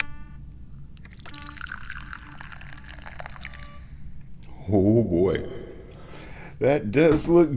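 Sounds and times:
tea pouring into a cup: 1.0 - 4.1
speech: 4.7 - 5.6, 6.6 - 7.5.

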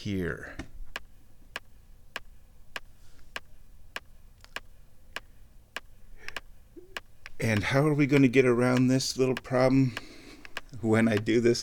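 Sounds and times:
speech: 0.0 - 0.6, 7.4 - 10.1, 10.7 - 11.6
clock ticking: 0.9 - 11.6.

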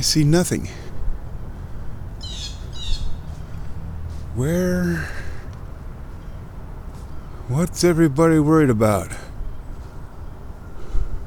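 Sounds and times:
speech: 0.0 - 0.8, 4.4 - 5.2, 7.5 - 9.2
bird alarm calls: 2.2 - 3.3.

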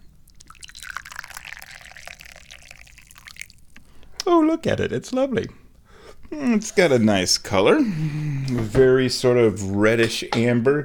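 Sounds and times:
aged pu-erh tea pouring from a teapot into a teacup: 0.2 - 3.8
speech: 4.2 - 5.6, 6.3 - 10.8.

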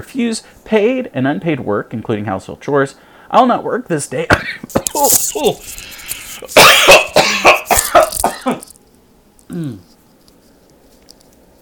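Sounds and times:
speech: 0.0 - 7.5, 9.5 - 9.9
speaker coughing fit: 6.4 - 8.7
voiced throat sounds: 9.5 - 9.9.

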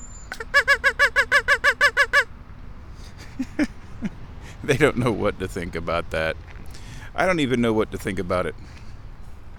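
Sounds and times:
duck call blown, quacking: 0.3 - 2.3
speech: 4.7 - 6.5, 7.2 - 8.8.

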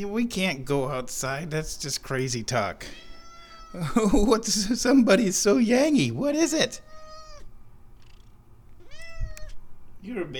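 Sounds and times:
speech: 0.0 - 3.0, 3.7 - 6.9, 10.0 - 10.3
low hiss: 0.0 - 10.3
cat meowing: 2.8 - 3.8, 6.7 - 9.7.

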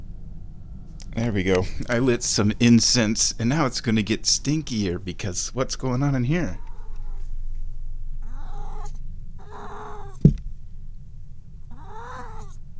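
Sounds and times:
steady low hum: 0.0 - 12.7
speech: 1.2 - 6.6
cat meowing: 6.6 - 7.3, 8.2 - 10.3, 11.7 - 12.6
soft thump: 10.2 - 10.6.

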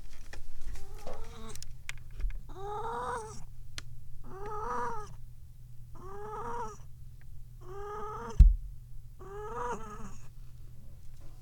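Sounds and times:
cat making strained meows in a litter box: 0.8 - 1.5, 2.5 - 3.4, 4.3 - 5.2, 5.9 - 6.9, 7.6 - 8.4, 9.2 - 10.3.

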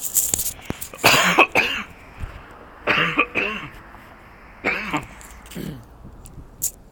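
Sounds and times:
person coughing harshly: 1.0 - 1.9, 2.9 - 3.7, 4.6 - 5.9.

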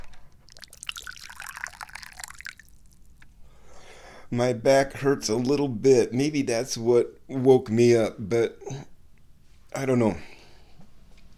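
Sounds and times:
tea pouring into a cup: 0.4 - 3.3
faint drips of tea: 0.4 - 3.6
speech: 4.3 - 8.9, 9.8 - 10.3.

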